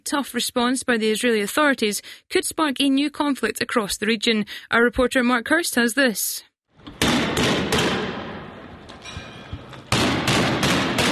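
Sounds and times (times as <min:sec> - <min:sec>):
speech: 0:00.0 - 0:06.5
police tear gas canisters being fired at protesters: 0:06.8 - 0:11.1.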